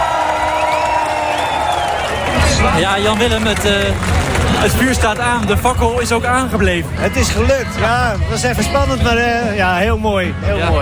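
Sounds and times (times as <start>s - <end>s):
crowd cheering, whooping and applauding at a festival opening: 0.0s - 6.5s
speech: 2.6s - 10.8s.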